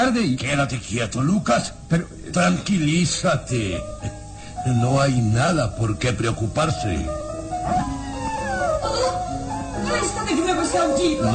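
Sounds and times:
speech: 0.0s - 8.0s, 10.0s - 11.3s
dog howling at night: 7.7s - 10.1s.

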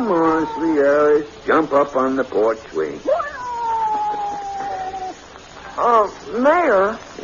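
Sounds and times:
long drawn-out cat meow falling in pitch: 0.0s - 1.0s, 3.1s - 5.2s
faint noise: 0.0s - 7.2s
speech: 0.1s - 3.2s, 5.8s - 7.2s.

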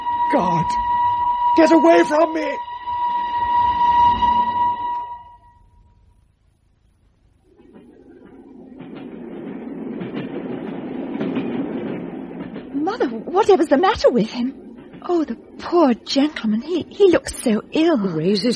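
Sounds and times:
train horn blaring: 0.0s - 5.8s
speech: 0.3s - 1.0s, 1.6s - 2.7s, 13.4s - 18.5s
train rumbling along the rails: 7.6s - 18.5s.

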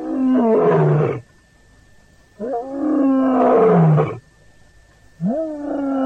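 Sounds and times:
lion roaring: 0.0s - 1.2s, 2.4s - 4.2s, 5.2s - 6.0s.

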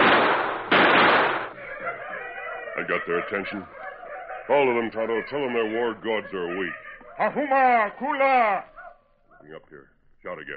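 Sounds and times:
gunshots fired into the ground: 0.0s - 1.6s
laughter: 1.6s - 4.5s, 5.2s - 8.7s
speech: 2.8s - 3.8s, 4.5s - 8.7s, 9.4s - 10.5s.

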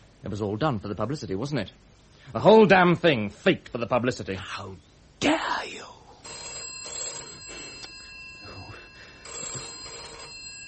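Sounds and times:
speech: 0.2s - 6.0s
old-style telephone bell ringing: 6.2s - 10.6s.

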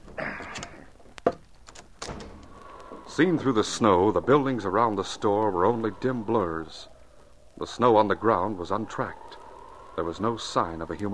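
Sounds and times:
heavy wooden front door being unbarred and opened: 0.1s - 3.5s
speech: 3.2s - 6.9s, 7.6s - 9.3s, 10.0s - 11.1s.

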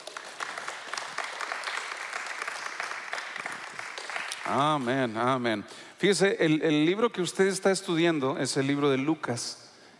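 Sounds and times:
church audience clapping during a service: 0.0s - 5.4s
speech: 4.5s - 9.6s.

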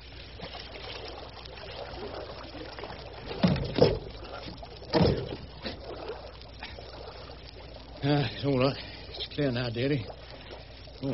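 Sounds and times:
water sloshing and splashing beside a boat: 0.0s - 11.1s
speech: 8.1s - 10.2s, 11.0s - 11.1s.

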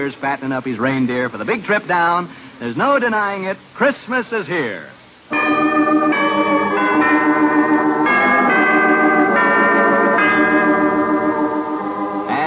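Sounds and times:
speech: 0.0s - 5.7s
church bells ringing in a continuous peal: 5.3s - 12.4s.

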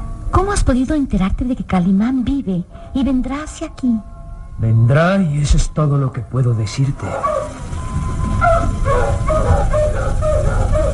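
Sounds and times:
constant low rumbling background: 0.0s - 10.9s
speech: 0.4s - 7.6s
dog barking in short yaps: 7.1s - 7.6s, 8.4s - 10.9s.

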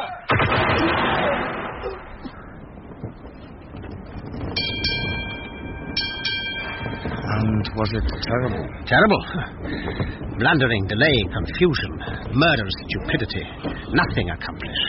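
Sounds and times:
guns firing on command: 0.3s - 4.5s
heavy rumbling noise: 0.3s - 14.8s
speech: 7.8s - 14.8s.

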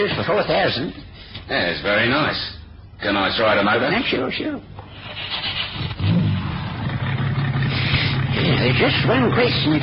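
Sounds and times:
speech: 0.0s - 5.9s, 8.6s - 9.8s
white convertible car engine starting and running: 4.8s - 9.8s.

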